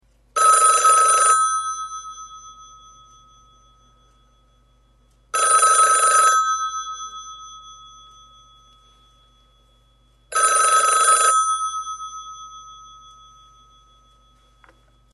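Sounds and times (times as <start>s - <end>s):
European telephone bell: 0.4s - 15.1s.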